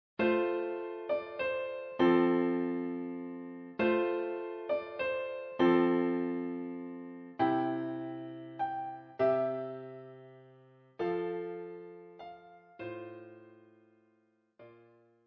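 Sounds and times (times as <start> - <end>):
piano played four-handed: 0.2 - 13.8.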